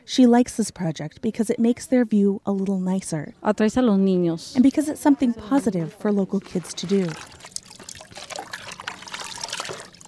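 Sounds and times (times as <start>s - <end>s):
speech: 0.1s - 7.4s
running water trickling as kids rinse paintbrushes: 6.4s - 10.0s.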